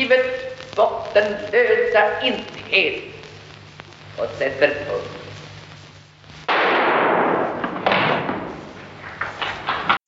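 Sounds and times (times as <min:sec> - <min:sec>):
speech: 0:00.0 - 0:03.1, 0:04.2 - 0:05.2
single gunshot: 0:06.5 - 0:08.6.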